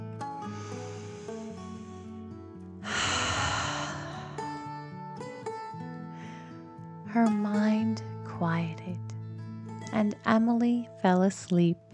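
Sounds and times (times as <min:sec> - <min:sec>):
gentle sustained music: 0:00.0 - 0:11.9
deep breathy exhale of a calming deep breath: 0:00.4 - 0:02.2, 0:02.8 - 0:04.9
speech: 0:07.2 - 0:09.1, 0:09.9 - 0:11.8.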